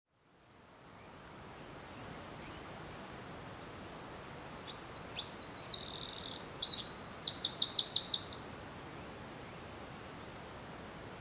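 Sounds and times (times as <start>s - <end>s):
faint background hiss: 0.1s - 11.1s
Eurasian wren Troglodytes troglodytes singing: 4.6s - 8.5s.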